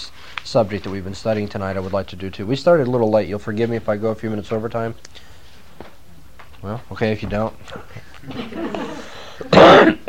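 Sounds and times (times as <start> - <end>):
speech: 0.5 - 5.3, 6.6 - 10.0
laughter: 8.2 - 9.6
person coughing: 8.8 - 10.0.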